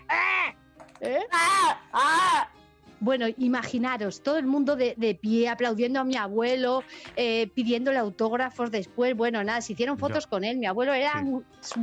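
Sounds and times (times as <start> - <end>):
human voice imitating a crow's caw: 0.0 - 0.6, 1.3 - 2.6, 10.0 - 10.2
speech: 1.0 - 11.8.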